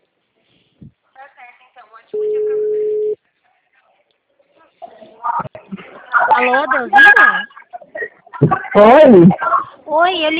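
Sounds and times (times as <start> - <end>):
telephone tone after a dropped call: 2.2 - 3.2
speech: 6.4 - 7.5, 8.4 - 10.3.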